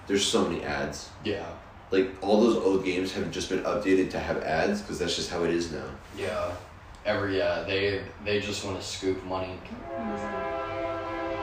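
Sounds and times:
speech: 0.1s - 10.5s
passing train horn blaring: 9.8s - 11.4s.

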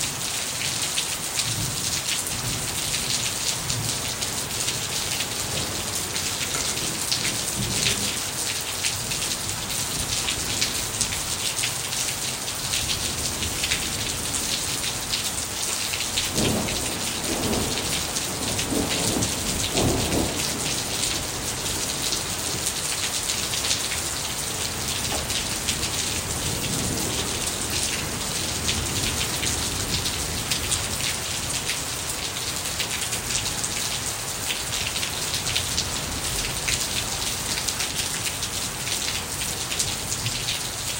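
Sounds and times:
dense rain pattering on a hard surface: 0.0s - 40.9s.

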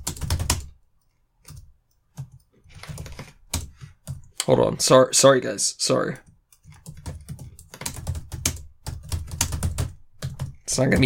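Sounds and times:
fast typing on a computer keyboard: 0.0s - 0.8s, 1.4s - 4.4s, 6.2s - 11.0s
speech: 4.5s - 6.3s, 10.8s - 11.0s.

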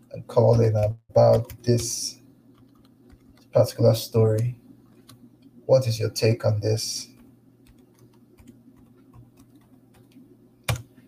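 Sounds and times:
low steady hum: 0.0s - 11.0s
speech: 0.2s - 2.2s, 3.6s - 4.6s, 5.7s - 7.1s
typing on a computer keyboard: 0.4s - 3.6s, 7.2s - 10.9s.

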